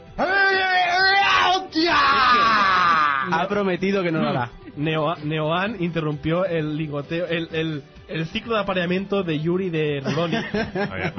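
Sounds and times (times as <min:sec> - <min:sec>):
person imitating a scream: 0:00.2 - 0:03.4
speech: 0:03.3 - 0:11.1
laughter: 0:10.0 - 0:11.1.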